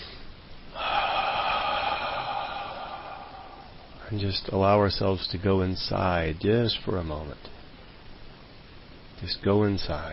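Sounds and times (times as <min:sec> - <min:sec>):
deep breath drawn in slowly through the nose: 0:00.0 - 0:04.0
speech: 0:04.1 - 0:07.5, 0:09.2 - 0:10.1.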